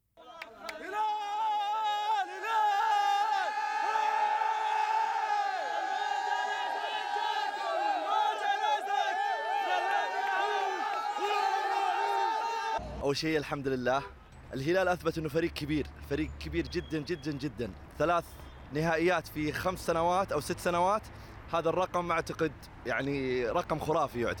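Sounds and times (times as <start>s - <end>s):
football fans cheering and chanting in celebration of a continental title: 0.2s - 12.8s
speech: 13.1s - 24.3s.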